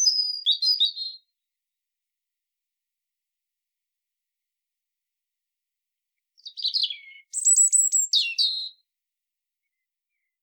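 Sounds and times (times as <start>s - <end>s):
European robin Erithacus rubecula singing: 0.0s - 1.3s, 6.4s - 8.8s, 9.6s - 10.4s.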